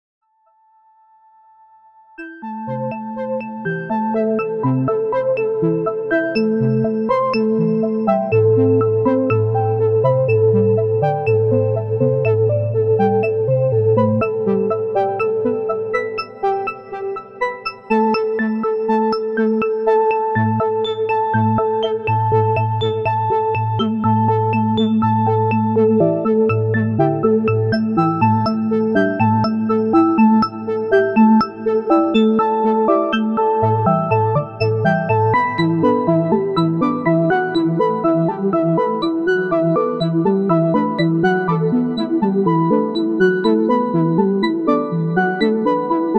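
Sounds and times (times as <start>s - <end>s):
constant tempo polyphonic sequence: 2.2s - 46.1s.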